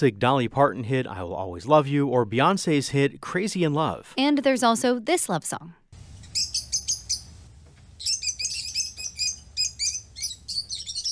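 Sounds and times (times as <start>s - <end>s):
speech: 0.0s - 5.8s
low rumble of noise: 6.0s - 11.0s
rosy-faced lovebird chirping shrilly: 6.0s - 11.0s.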